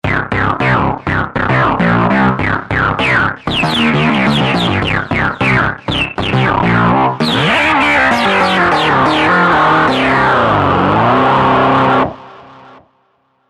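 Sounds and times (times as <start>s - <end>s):
overdriven synthesizer: 0.1s - 12.8s.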